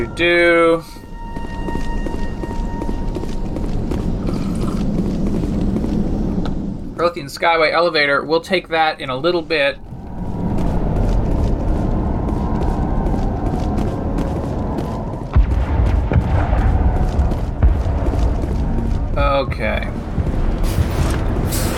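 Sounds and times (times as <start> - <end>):
speech: 0.0 - 1.0, 7.0 - 9.9
steady rumbling video game soundscape set in a colony: 0.0 - 21.7
booms of explosions in video game: 15.3 - 21.7.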